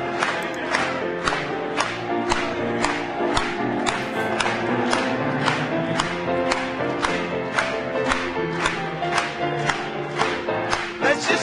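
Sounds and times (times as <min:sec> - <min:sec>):
crowd singing: 0:00.0 - 0:06.0, 0:09.4 - 0:11.4
audience clapping hands in rhythmic unison: 0:00.0 - 0:11.4
music: 0:00.0 - 0:11.4.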